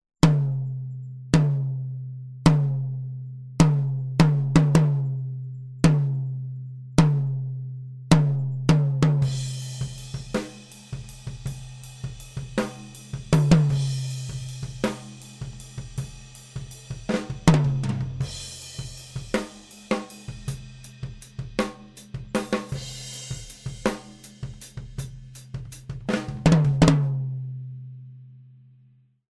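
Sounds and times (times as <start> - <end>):
tom drum recorded with a Gemini 5 FET microphone: 0.2 - 0.8, 1.4 - 1.8, 2.5 - 3.0, 3.6 - 5.2, 5.8 - 6.3, 7.0 - 7.5, 8.1 - 27.7.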